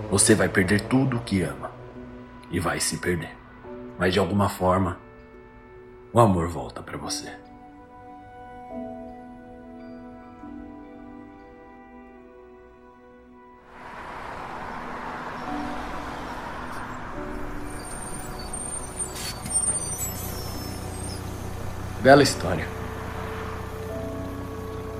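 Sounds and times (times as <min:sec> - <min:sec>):
speech: 0:00.1 - 0:01.7, 0:02.5 - 0:05.0, 0:06.1 - 0:07.4, 0:22.0 - 0:22.8
large bus engine idling: 0:13.8 - 0:24.9
bus air brakes hissing: 0:16.7 - 0:22.0.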